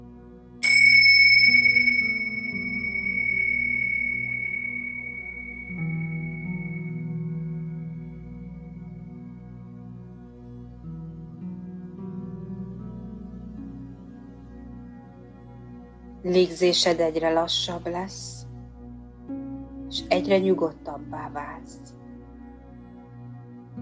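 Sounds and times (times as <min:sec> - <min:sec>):
meditation bell ringing: 0:00.6 - 0:07.5
soft steady low drone: 0:00.6 - 0:08.5
speech: 0:16.2 - 0:18.4, 0:20.2 - 0:22.0.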